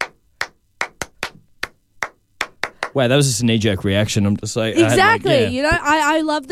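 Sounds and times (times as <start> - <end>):
rhythmic hand claps: 0.0 - 3.2
speech: 2.9 - 6.4.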